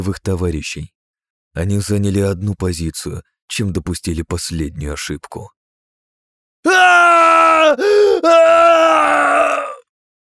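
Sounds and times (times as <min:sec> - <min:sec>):
speech: 0:00.0 - 0:01.0, 0:01.6 - 0:05.6, 0:06.6 - 0:07.1
wounded soldier screaming in anguish: 0:06.6 - 0:09.9.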